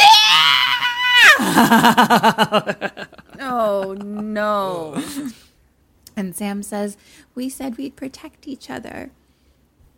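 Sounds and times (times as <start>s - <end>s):
voice imitating a shrieking scream: 0.0s - 1.6s
laughter: 1.4s - 5.1s
speech: 1.6s - 5.4s, 6.2s - 9.2s.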